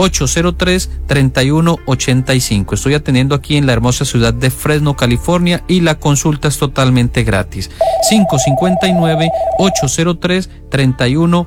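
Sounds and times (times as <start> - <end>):
speech: 0.0 - 11.4
telephone ringing with an incoming call: 7.8 - 10.0.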